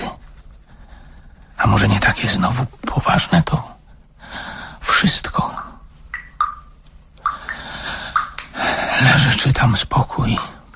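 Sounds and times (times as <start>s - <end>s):
soft hiss: 0.0s - 10.7s
speech: 1.7s - 3.8s, 4.9s - 5.6s, 9.1s - 10.6s
water dripping from a tap not fully closed: 4.8s - 8.6s, 10.2s - 10.7s.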